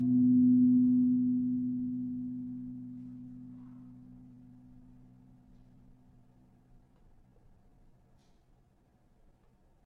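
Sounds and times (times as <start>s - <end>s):
tuned gamelan gong 4C: 0.0s - 5.6s.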